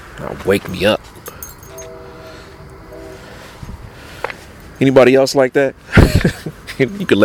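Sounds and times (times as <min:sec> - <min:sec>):
speech: 0:00.2 - 0:01.2, 0:04.8 - 0:07.2
train horn blasts: 0:01.6 - 0:04.2
train rumbling past: 0:01.7 - 0:05.8
laughter: 0:05.9 - 0:07.1.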